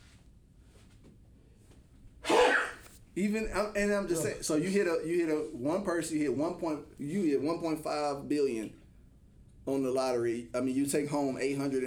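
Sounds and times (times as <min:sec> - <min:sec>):
loud breathy sneeze: 0:02.2 - 0:02.9
speech: 0:03.2 - 0:08.8, 0:09.6 - 0:11.8.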